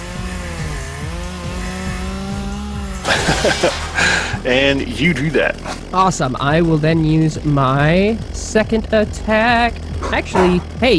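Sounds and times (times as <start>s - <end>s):
chainsaw grinding against metal: 0.0s - 10.9s
laughter: 3.0s - 5.8s, 10.0s - 10.9s
speech: 3.1s - 10.9s.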